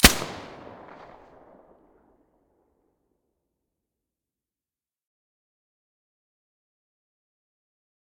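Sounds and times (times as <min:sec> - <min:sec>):
FN2000 rifle with silencer: 0:00.0 - 0:02.0.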